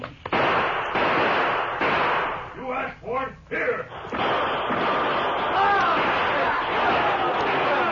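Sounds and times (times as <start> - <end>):
gunshots in a Western gunfight: 0.3 - 2.6, 3.9 - 7.8
people shouting in a Western gunfight: 4.1 - 7.8.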